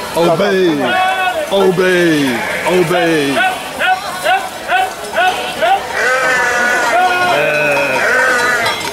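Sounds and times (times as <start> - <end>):
speech: 0.2 - 3.5
flock of sheep including black sheep bleating: 2.0 - 4.0, 5.2 - 8.8.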